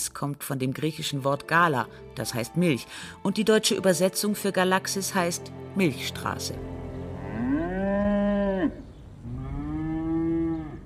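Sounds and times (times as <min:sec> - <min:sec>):
speech: 0:00.1 - 0:06.8
cow mooing in long drawn-out calls: 0:07.0 - 0:10.8.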